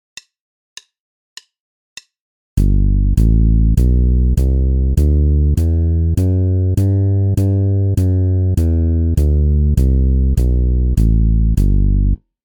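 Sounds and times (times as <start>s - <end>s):
bass guitar playing a G major scale exercise: 2.6s - 12.2s.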